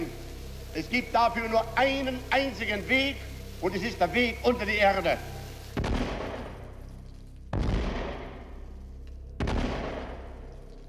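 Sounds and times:
speech: 0:00.8 - 0:05.3
heavy ceremonial salute shots echoing through a street: 0:05.8 - 0:06.8, 0:07.5 - 0:08.6, 0:09.4 - 0:10.5.

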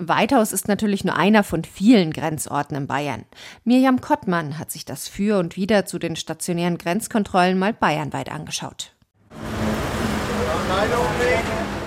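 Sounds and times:
speech: 0:00.0 - 0:08.9, 0:10.7 - 0:11.8
passing cars engine hum at a border crossing: 0:09.3 - 0:11.8.

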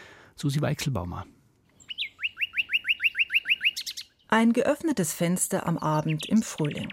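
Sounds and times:
speech: 0:00.4 - 0:01.4, 0:04.3 - 0:06.9
male nightingale singing in a hedge in a garden: 0:01.6 - 0:06.9.

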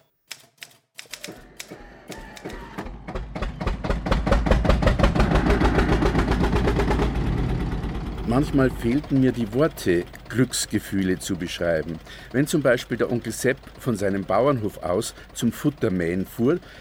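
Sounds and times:
typewriter keys clattering on a table: 0:00.3 - 0:02.6
low mechanical rumble: 0:02.4 - 0:16.8
speech: 0:08.4 - 0:16.8.

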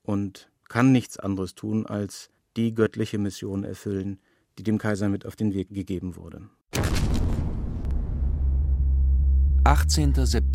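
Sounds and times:
speech: 0:00.1 - 0:07.0, 0:09.6 - 0:10.5
bomb explosion: 0:06.7 - 0:09.4
heavy sustained low rumble: 0:06.8 - 0:10.5.

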